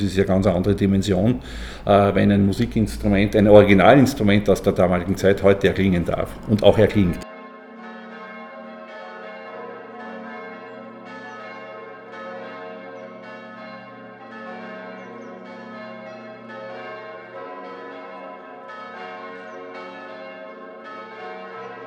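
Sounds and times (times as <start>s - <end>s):
speech: 0.0s - 7.2s
several church bells pealing: 0.0s - 21.8s.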